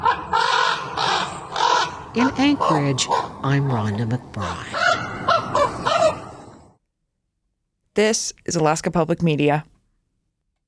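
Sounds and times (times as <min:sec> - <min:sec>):
raven giving harsh raspy caws: 0:00.0 - 0:06.8
speech: 0:02.1 - 0:04.8, 0:08.0 - 0:09.7.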